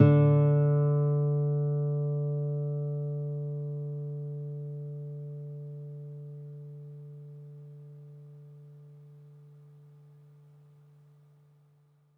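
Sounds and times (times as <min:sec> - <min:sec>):
classical guitar playing open: 0:00.0 - 0:11.3.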